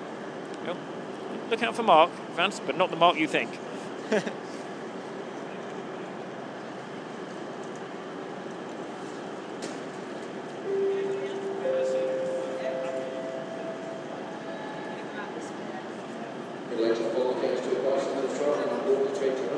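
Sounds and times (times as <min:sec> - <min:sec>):
speech: 0:00.7 - 0:04.4
train pulling into a station with a low rumble: 0:04.9 - 0:19.1.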